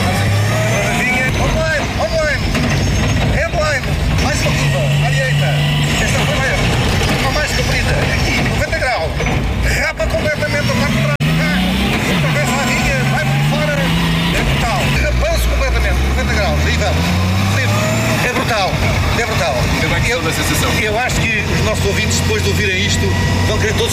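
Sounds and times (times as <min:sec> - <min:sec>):
rally car accelerating hard through the gears during a co-drive passenger ride: 0:00.0 - 0:23.9.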